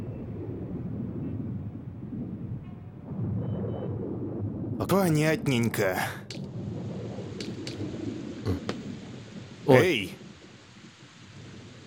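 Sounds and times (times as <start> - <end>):
low steady rumble of thunder: 0.0 - 11.8
speech: 4.8 - 6.5, 9.7 - 10.2
hiss of rain: 4.8 - 11.8
sharp taps of raindrops landing: 5.1 - 9.2.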